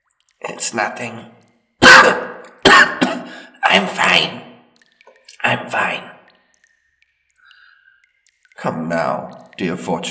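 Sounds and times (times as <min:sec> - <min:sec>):
speech: 0:00.5 - 0:02.3, 0:03.7 - 0:04.4, 0:05.4 - 0:06.1, 0:08.6 - 0:10.0
harsh raspy coughing fit: 0:01.8 - 0:03.6.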